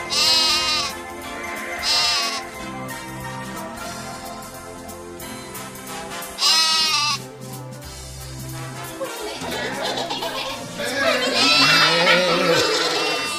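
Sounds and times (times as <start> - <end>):
young goats bleating: 0.1 - 1.0, 1.8 - 2.6, 6.4 - 7.2, 10.8 - 13.3
laughter: 8.8 - 13.3.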